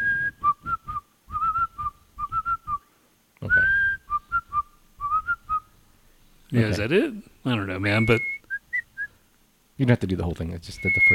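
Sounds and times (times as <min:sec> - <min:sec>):
person whistling a short melodic tune: 0:00.0 - 0:05.7, 0:08.0 - 0:09.1, 0:10.8 - 0:11.1
speech: 0:06.5 - 0:08.3, 0:09.8 - 0:11.1.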